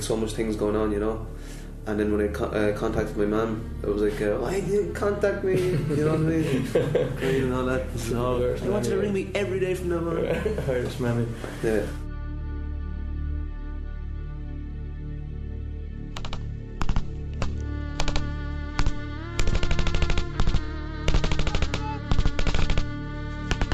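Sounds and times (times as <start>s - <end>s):
low droning background: 0.0s - 23.7s
speech: 0.1s - 12.0s
laughter: 5.4s - 7.7s, 10.1s - 11.1s
gunshots and automatic bursts in a gunfight: 18.8s - 22.9s.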